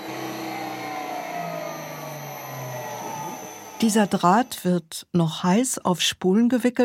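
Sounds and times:
plastic filament extruder motor hum: 0.0s - 4.6s
speech: 3.8s - 6.8s.

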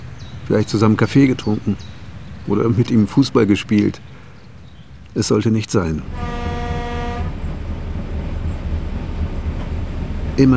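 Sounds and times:
historic railway train rumbling along: 0.0s - 10.5s
historic railway train wheel and engine noise: 0.0s - 10.5s
speech: 0.5s - 4.1s, 5.2s - 6.4s, 10.4s - 10.5s
historic railway train horn blast: 6.0s - 10.4s.

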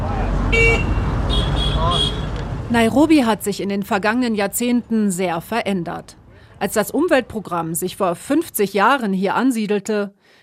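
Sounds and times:
rumble of dense traffic: 0.0s - 9.8s
motorcycle horn honking: 0.5s - 2.4s
speech: 2.7s - 10.4s.

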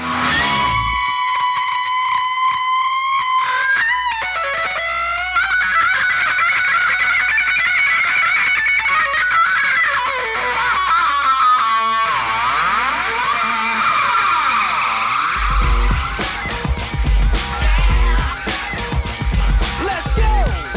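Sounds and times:
distorted electric guitar solo from a rock song: 0.0s - 20.7s
low rumbling backing: 15.4s - 20.6s.

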